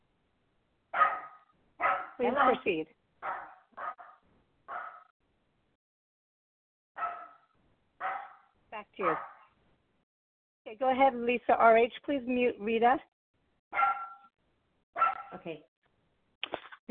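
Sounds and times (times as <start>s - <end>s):
dog barking in short sharp loud bursts: 1.0s - 5.1s, 7.0s - 9.5s, 13.8s - 14.3s, 15.0s - 15.5s
speech: 2.2s - 3.0s, 9.0s - 9.3s, 10.7s - 13.1s, 15.3s - 15.7s.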